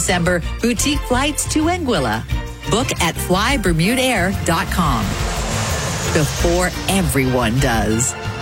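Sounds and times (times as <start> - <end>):
speech: 0.1 - 5.3, 6.1 - 8.2
steady tonal hum: 3.3 - 8.3.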